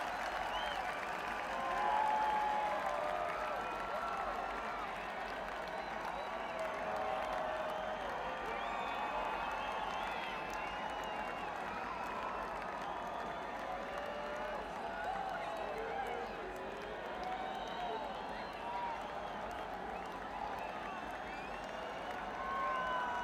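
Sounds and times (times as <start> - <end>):
crowd at the Champlain Valley Exposition in Essex Junction, Vermont: 0.0 - 23.2.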